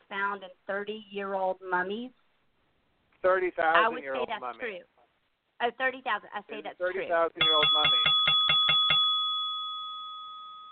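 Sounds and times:
speech: 0.2s - 2.2s, 3.2s - 4.9s, 5.6s - 8.4s
small bell struck and ringing: 7.4s - 10.6s.

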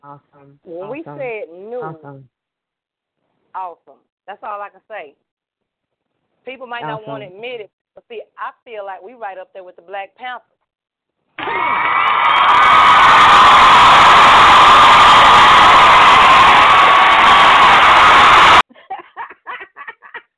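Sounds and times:
speech: 0.0s - 2.4s, 3.6s - 5.3s, 6.4s - 10.5s, 11.4s - 12.5s
loud crowd cheering and shouting with whoops: 11.4s - 18.6s
laughter: 18.6s - 20.3s.

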